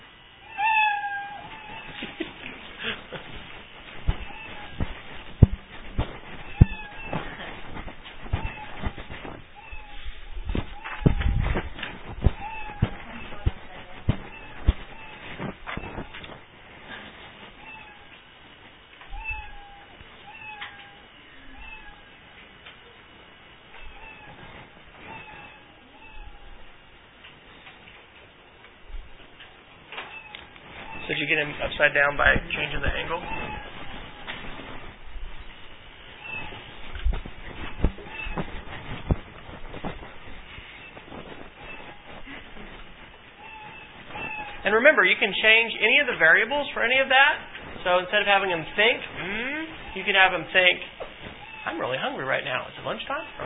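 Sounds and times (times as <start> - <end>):
cat meowing with short plaintive cries: 0.4 - 2.0, 4.1 - 16.2, 17.6 - 18.1, 19.1 - 22.1, 23.8 - 26.6, 32.6 - 34.8, 36.1 - 39.2, 40.8 - 42.4, 43.4 - 44.6, 51.3 - 51.9, 53.1 - 53.4
speech: 31.1 - 33.7, 44.9 - 49.3, 50.0 - 50.9, 51.8 - 53.4.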